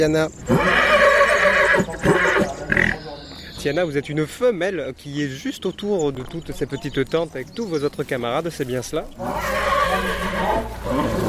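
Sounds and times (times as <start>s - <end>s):
speech: 0.0s - 0.7s, 1.8s - 2.5s, 3.6s - 11.2s
Camargue mare neighing at an agriculture show in Bordeaux France: 0.4s - 3.0s, 9.2s - 11.2s.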